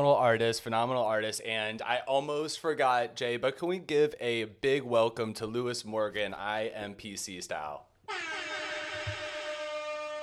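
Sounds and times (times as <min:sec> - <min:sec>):
speech: 0:00.0 - 0:08.3
dancehall air horn sound effect blaring: 0:08.1 - 0:10.2.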